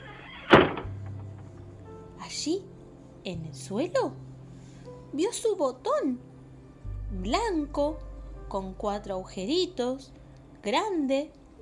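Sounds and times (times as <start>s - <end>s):
door slamming shut with heavy bang: 0.1s - 1.4s
speech: 2.3s - 4.3s, 5.1s - 6.3s, 7.1s - 11.4s.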